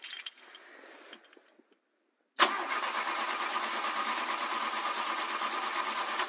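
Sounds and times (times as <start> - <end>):
car engine cranking but failing to start: 2.4 - 6.2.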